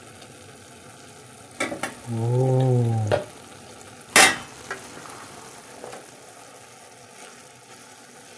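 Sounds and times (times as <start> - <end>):
pot of food simmering and sizzling: 0.0 - 8.3
speech: 2.1 - 3.2
short stirring knocks in a pot: 3.1 - 3.3.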